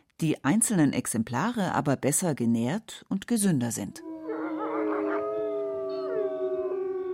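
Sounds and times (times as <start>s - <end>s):
speech: 0.2s - 4.1s
wolves howling in a chorus: 4.0s - 7.1s.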